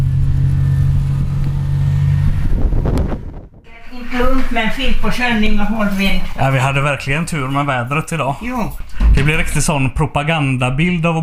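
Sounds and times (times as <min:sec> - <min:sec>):
motorboat engine droning as the boat heads out toward an island: 0:00.0 - 0:08.9
speech: 0:04.2 - 0:11.2.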